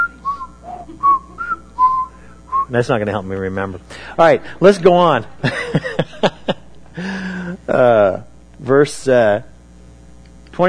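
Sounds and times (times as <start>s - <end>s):
group of people whistling a short tune together: 0.0s - 2.8s
speech: 2.7s - 6.4s, 7.7s - 9.5s
laughter: 4.6s - 7.6s.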